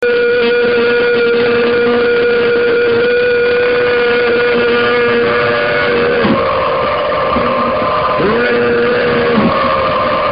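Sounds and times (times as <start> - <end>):
choir singing: 0.0 - 10.3.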